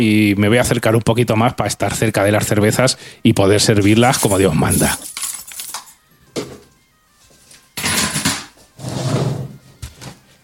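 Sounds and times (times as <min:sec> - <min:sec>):
speech: 0:00.0 - 0:05.2
chair scraping and bumping across the floor: 0:07.4 - 0:10.2.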